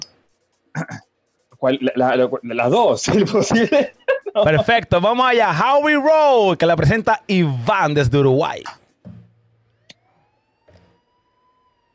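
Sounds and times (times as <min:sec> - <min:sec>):
speech: 0:01.6 - 0:08.8
laughter: 0:03.3 - 0:04.8
police-style siren wail in a song intro: 0:09.6 - 0:11.9.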